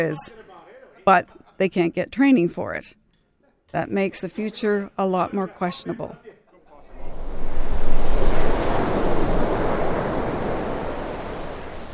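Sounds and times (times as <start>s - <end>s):
speech: 0.0s - 0.4s, 1.0s - 3.0s, 3.7s - 6.4s
sea waves breaking on the shore: 6.8s - 11.9s
wind rumble: 6.8s - 11.9s.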